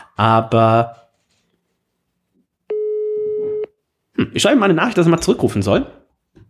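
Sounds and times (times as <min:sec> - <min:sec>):
speech: 0:00.2 - 0:01.0, 0:04.2 - 0:06.0
telephone busy signal: 0:02.7 - 0:03.7.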